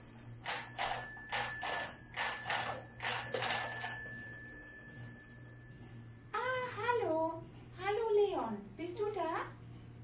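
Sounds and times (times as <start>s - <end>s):
telephone ringing with rattling bell tones: 0.0s - 6.4s
faint steady hum: 0.0s - 10.0s.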